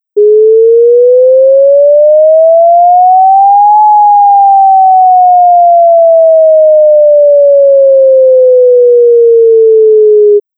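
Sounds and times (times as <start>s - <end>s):
outdoor emergency warning siren wailing: 0.2s - 10.4s.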